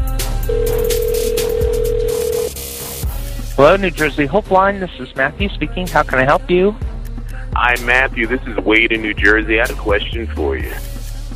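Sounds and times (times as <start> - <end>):
phone ringback tone on outgoing call to a helpline: 0.4 - 2.5
speech: 3.6 - 6.9, 7.6 - 10.9.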